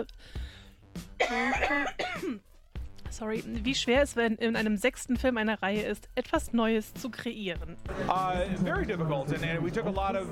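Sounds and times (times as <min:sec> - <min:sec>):
speech: 0:01.0 - 0:02.5, 0:03.1 - 0:10.3
person coughing: 0:01.2 - 0:02.4.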